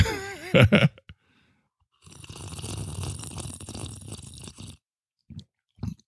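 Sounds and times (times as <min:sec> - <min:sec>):
laughter: 0:00.0 - 0:01.0
speech: 0:00.5 - 0:01.0
breaths: 0:01.1 - 0:02.2
bubbling slurp of a fizzy drink: 0:02.0 - 0:06.0.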